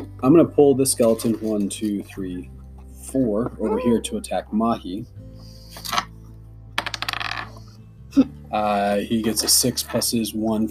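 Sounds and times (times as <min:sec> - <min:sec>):
speech: 0:00.2 - 0:06.0, 0:08.2 - 0:10.7
dice rolling on a table: 0:06.8 - 0:07.7.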